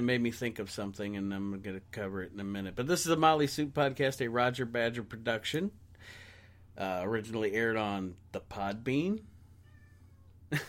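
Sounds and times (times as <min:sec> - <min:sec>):
speech: 0:00.0 - 0:06.2, 0:06.8 - 0:09.3, 0:10.5 - 0:10.6
domestic cat meowing: 0:09.6 - 0:10.5.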